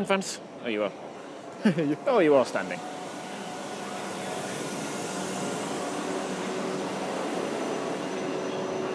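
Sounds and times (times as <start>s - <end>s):
speech: 0.0s - 3.0s
faint tonal whines of train: 0.0s - 8.9s
train pulling in at station platform with rumbling roar: 0.4s - 8.9s.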